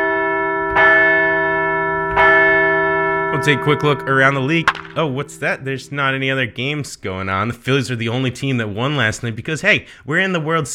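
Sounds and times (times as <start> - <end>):
large bell tolling: 0.0 - 7.4
speech: 3.4 - 10.7.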